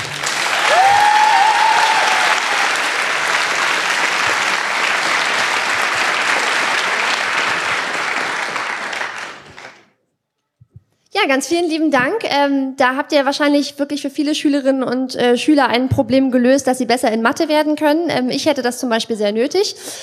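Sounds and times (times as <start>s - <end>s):
crowd applauding: 0.0s - 9.9s
cheer or whistle: 0.5s - 2.8s
speech: 11.3s - 20.0s.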